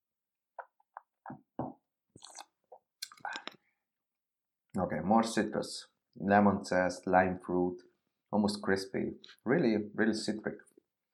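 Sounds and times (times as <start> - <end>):
person sipping wine during a wine tasting: 0.6 - 3.6
louder airy slurp as wine is drawn in: 1.2 - 3.5
speech: 4.8 - 10.7.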